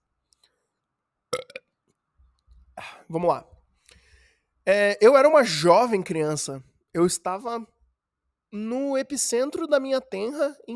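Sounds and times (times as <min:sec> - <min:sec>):
loud burp: 0:01.4 - 0:01.6
speech: 0:03.1 - 0:03.5, 0:04.7 - 0:07.7, 0:08.5 - 0:10.7.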